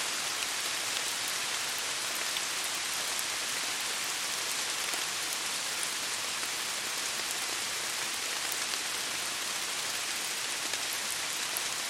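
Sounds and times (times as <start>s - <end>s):
rain pattering on leaves in a forest: 0.0s - 11.8s.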